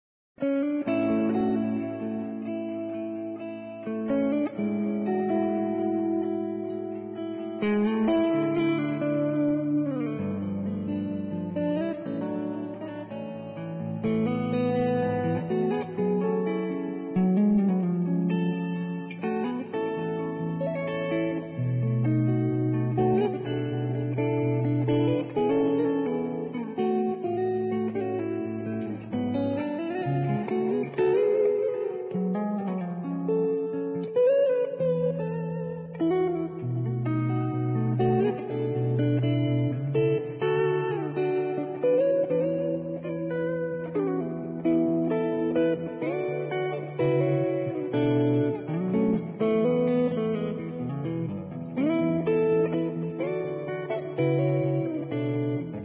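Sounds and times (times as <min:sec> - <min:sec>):
electric guitar: 0:00.4 - 0:55.8.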